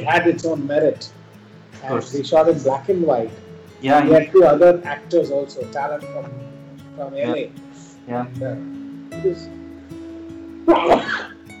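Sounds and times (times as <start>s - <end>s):
speech: 0.0s - 1.2s, 1.8s - 9.6s, 10.7s - 11.2s
sharp sneeze: 10.7s - 11.4s.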